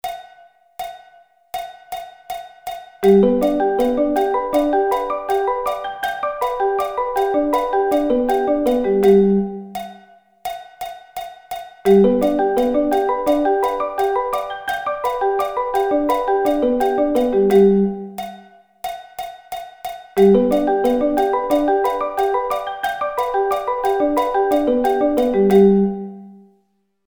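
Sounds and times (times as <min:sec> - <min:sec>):
G arpeggio inversions played: 0:03.0 - 0:09.8, 0:11.9 - 0:18.2, 0:20.2 - 0:26.4.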